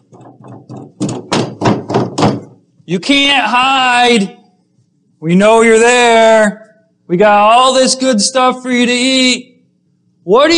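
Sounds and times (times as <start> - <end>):
knocking and heavy pounding on a door: 0.0 - 2.6
speech: 2.9 - 4.4, 5.2 - 9.5, 10.3 - 10.5.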